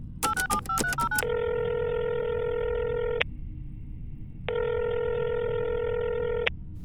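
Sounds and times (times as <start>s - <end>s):
telephone keypad beeps: 0.3s - 3.3s, 4.5s - 6.5s.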